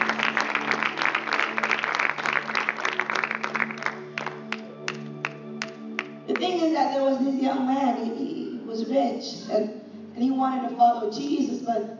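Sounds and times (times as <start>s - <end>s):
congregation clapping: 0.0s - 6.5s
speech: 6.8s - 11.9s.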